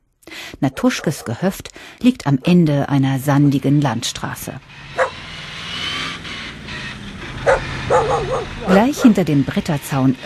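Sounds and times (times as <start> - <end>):
speech: 0.6 - 5.0, 8.6 - 10.2
large shaggy dog barking guarding a farmyard near the Oder ferry: 0.8 - 1.4, 5.0 - 5.2, 7.4 - 9.3
faint vehicle rumble: 2.6 - 10.2.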